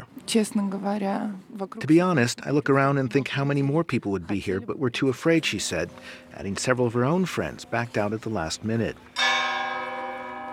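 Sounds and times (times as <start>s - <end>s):
speech: 0.3s - 9.2s
church bell ringing to signal the end of a funeral service: 5.3s - 10.5s.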